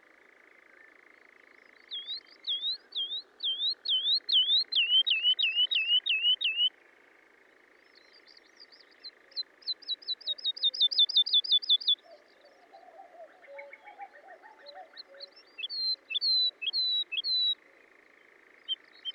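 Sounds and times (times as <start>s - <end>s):
woodlark song: 1.9s - 6.7s, 9.8s - 17.6s.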